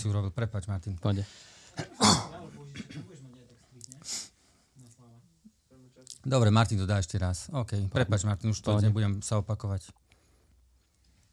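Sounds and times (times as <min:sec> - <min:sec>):
speech: 0:00.0 - 0:02.1, 0:06.2 - 0:10.0
person coughing after choking: 0:01.8 - 0:03.2.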